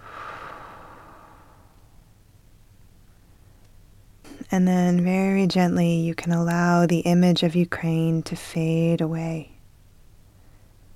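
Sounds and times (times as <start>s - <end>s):
slow airy exhale: 0.0s - 2.0s
low room hum: 0.0s - 10.9s
speech: 4.5s - 9.5s.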